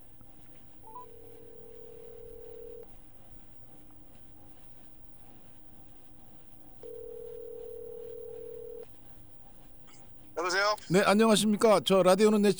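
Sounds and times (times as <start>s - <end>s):
low telephone ringback tones while a call connects: 0.8s - 2.9s, 6.8s - 8.8s
speech: 10.5s - 12.5s.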